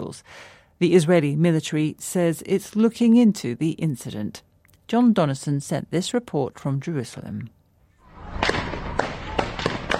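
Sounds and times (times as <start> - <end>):
speech: 0.0 - 7.6
gunfire in a Palestinian village in the West Bank: 8.2 - 9.9.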